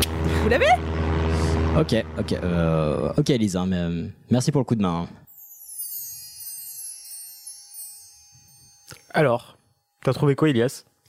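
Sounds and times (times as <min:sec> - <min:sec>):
propeller airplane engine droning: 0:00.0 - 0:03.3
speech: 0:00.4 - 0:01.0, 0:01.8 - 0:05.2, 0:09.1 - 0:11.0.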